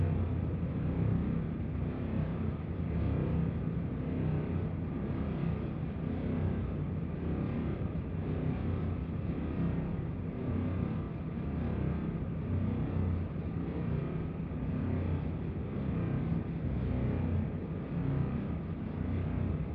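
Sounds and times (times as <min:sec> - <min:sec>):
industrial ambient drones: 0:00.0 - 0:19.7.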